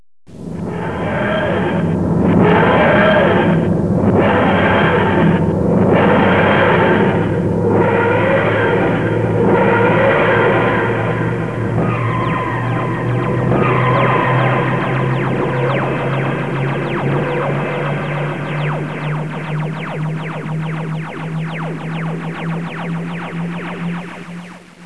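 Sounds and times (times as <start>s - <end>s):
TARDIS takeoff sound effect: 0.4s - 24.8s.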